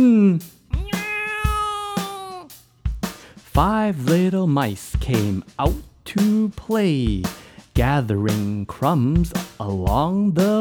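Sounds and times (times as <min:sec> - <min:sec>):
speech: 0:00.0 - 0:00.6, 0:03.6 - 0:10.5
cat meowing: 0:00.8 - 0:02.5.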